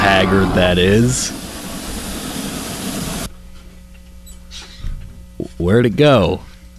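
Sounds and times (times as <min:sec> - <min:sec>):
loud broad rush of hissing noise: 0:00.0 - 0:03.3
train idling in a station with a low engine hum: 0:00.0 - 0:03.3
speech: 0:00.2 - 0:01.5, 0:05.6 - 0:06.5.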